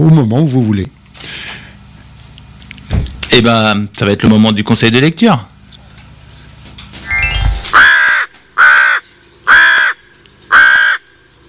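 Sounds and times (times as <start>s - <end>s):
speech: 0.0s - 1.0s, 3.3s - 5.5s
brief rising chime-like sound: 7.0s - 7.8s
crow cawing: 7.8s - 11.2s.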